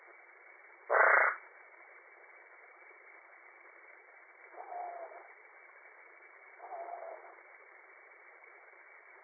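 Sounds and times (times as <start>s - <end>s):
Smilisca cyanostica calling: 0.9s - 1.6s, 4.4s - 8.7s.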